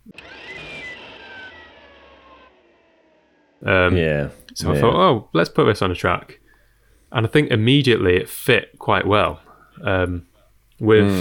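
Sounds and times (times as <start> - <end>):
descending whining tone: 0.0 - 3.8
speech: 3.6 - 6.4, 7.1 - 11.1.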